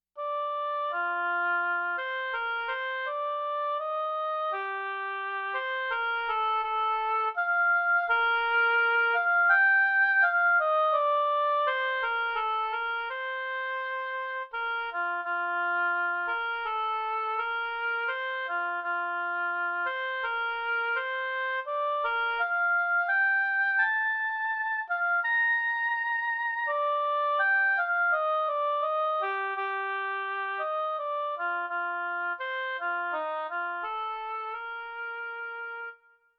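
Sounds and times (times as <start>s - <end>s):
oboe playing lyrically: 0.2s - 36.3s.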